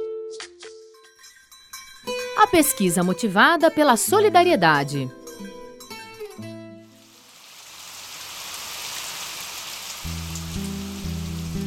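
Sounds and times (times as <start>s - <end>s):
speech: 2.4s - 5.2s
steady dense rain: 7.0s - 11.6s.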